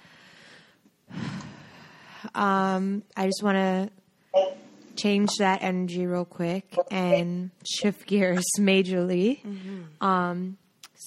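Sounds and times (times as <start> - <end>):
deep inhale: 0.0 - 2.3
speech: 2.3 - 11.0.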